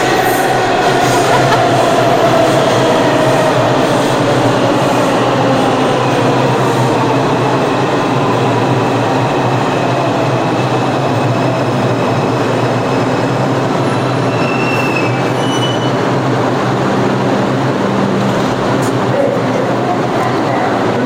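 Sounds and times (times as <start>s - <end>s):
subway train arriving at station: 0.0s - 21.0s
laughter: 0.7s - 3.2s
metallic wheel squeals: 14.3s - 16.0s.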